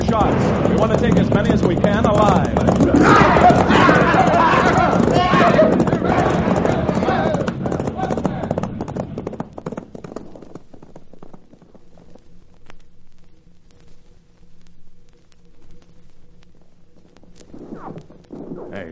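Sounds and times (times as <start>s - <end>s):
dense rapid clatter of horse hooves: 0.0s - 18.8s
faint low hum: 0.0s - 18.8s
horses galloping: 0.0s - 18.8s
speech: 0.1s - 3.2s.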